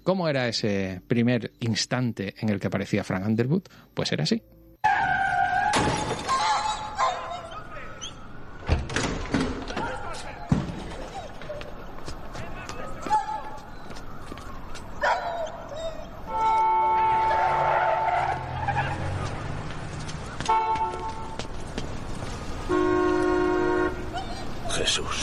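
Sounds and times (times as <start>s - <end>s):
speech: 0.1s - 5.1s
street noise: 4.6s - 25.2s
Toyota Camry tires screeching as it skids after hitting a dog: 4.8s - 12.6s, 15.5s - 25.2s
car horn honking: 16.3s - 18.6s, 20.5s - 21.4s, 22.6s - 24.2s.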